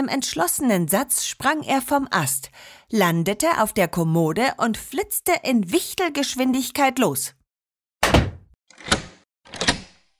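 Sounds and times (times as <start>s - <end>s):
speech: 0.0s - 7.4s
storeroom door slamming shut: 8.0s - 10.0s.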